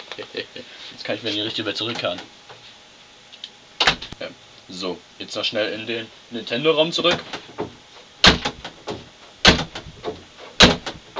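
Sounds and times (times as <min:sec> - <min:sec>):
speech: 0:01.1 - 0:02.4, 0:04.2 - 0:07.7
doors banging and rattling as they are opened and shut: 0:07.1 - 0:11.1.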